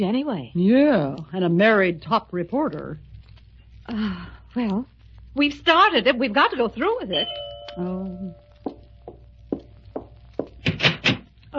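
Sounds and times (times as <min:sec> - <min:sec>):
speech: 0:00.0 - 0:03.1, 0:03.9 - 0:08.4
firm knocks on a door: 0:08.6 - 0:11.2.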